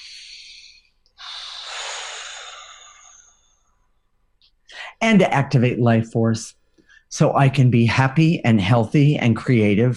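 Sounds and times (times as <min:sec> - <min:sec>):
deep breath taken during a guided breathing exercise: 0:00.0 - 0:04.0, 0:04.7 - 0:05.0, 0:06.6 - 0:07.1
speech: 0:05.0 - 0:09.9.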